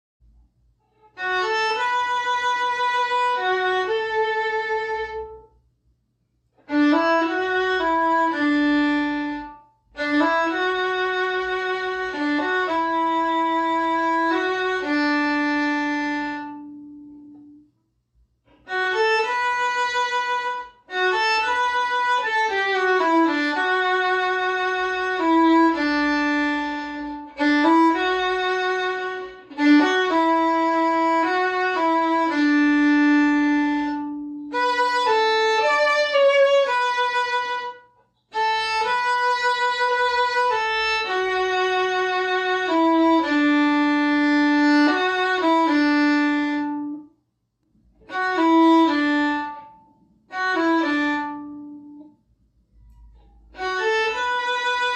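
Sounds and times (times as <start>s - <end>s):
beginner solo violin playing: 0.8s - 5.6s, 6.6s - 17.7s, 18.5s - 47.1s, 48.0s - 52.2s, 53.5s - 54.9s.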